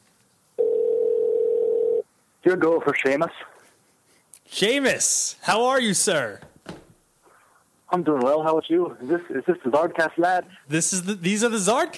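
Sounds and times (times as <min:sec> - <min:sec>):
telephone dial tone while a call is being placed: 0:00.6 - 0:02.0
speech: 0:02.4 - 0:03.5, 0:04.5 - 0:06.5, 0:07.9 - 0:11.9.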